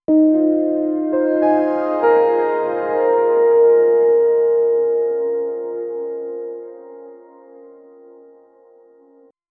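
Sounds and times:
short romantic music: 0.1 - 9.3.

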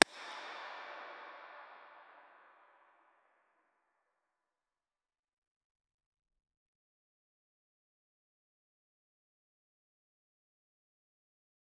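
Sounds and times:
corridor reverb echo: 0.0 - 2.7.

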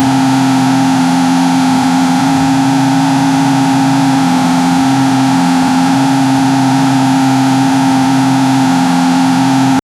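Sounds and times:
flat six engine racing: 0.0 - 9.8.

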